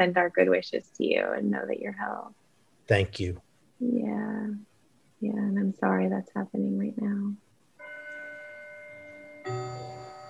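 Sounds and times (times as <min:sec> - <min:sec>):
speech: 0:00.0 - 0:07.4
clock chiming with bell-like strikes: 0:07.8 - 0:10.2.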